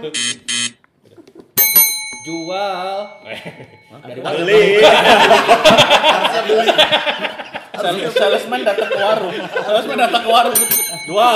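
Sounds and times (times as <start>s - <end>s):
speech: 0.0s - 0.8s, 2.3s - 11.3s
laughter: 1.0s - 1.6s, 3.2s - 11.3s
electric bell buzzing: 1.6s - 4.1s, 10.5s - 11.3s.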